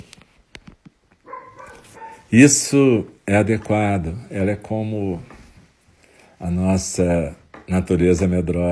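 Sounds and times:
female dog barking guarding her territory: 0:01.2 - 0:02.3
speech: 0:02.3 - 0:05.3, 0:06.4 - 0:08.7.

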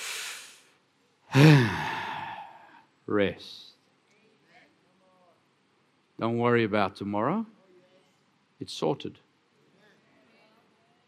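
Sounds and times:
soft breathy exhale: 0:00.0 - 0:00.7, 0:01.3 - 0:02.8
louder slightly voiced sigh: 0:01.3 - 0:02.9
speech: 0:03.1 - 0:03.7, 0:06.2 - 0:07.6, 0:08.6 - 0:09.2.

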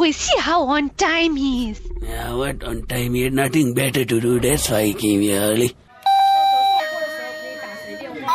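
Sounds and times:
speech: 0:00.1 - 0:05.8
electronic doorbell chime: 0:06.1 - 0:08.2.

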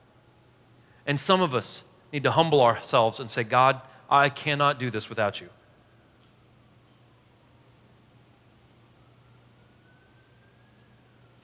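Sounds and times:
light hiss: 0:00.0 - 0:11.4
low constant hum: 0:00.0 - 0:11.4
speech: 0:01.1 - 0:05.6
faint emergency vehicle siren wailing outside: 0:08.8 - 0:11.4.

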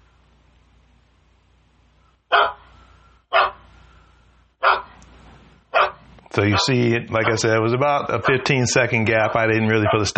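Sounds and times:
low steady hum: 0:00.0 - 0:10.1
recorded dog bark looped by an app: 0:02.3 - 0:02.7, 0:03.3 - 0:03.7, 0:04.6 - 0:05.0, 0:05.7 - 0:10.1
speech: 0:06.4 - 0:10.1.

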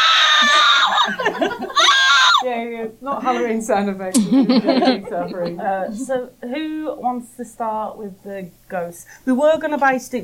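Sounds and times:
woman screaming while getting a tattoo: 0:00.0 - 0:02.5
laughter: 0:00.3 - 0:02.4, 0:04.2 - 0:06.1
speech: 0:02.5 - 0:10.2.

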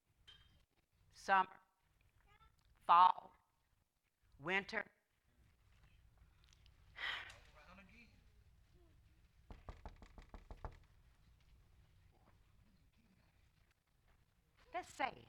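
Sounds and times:
speech: 0:01.3 - 0:01.6, 0:02.9 - 0:03.4, 0:04.4 - 0:05.0, 0:14.8 - 0:15.2
knocking on a door: 0:09.5 - 0:11.0.

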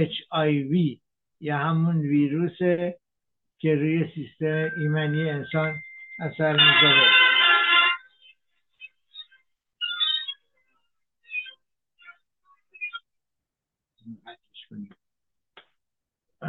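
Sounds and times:
speech: 0:00.0 - 0:03.0, 0:03.6 - 0:07.1, 0:14.1 - 0:15.0
electronic beeps and chirps: 0:04.4 - 0:07.4, 0:08.0 - 0:10.6, 0:11.2 - 0:13.1
telephone ringing with bright electronic tones: 0:04.6 - 0:08.2.

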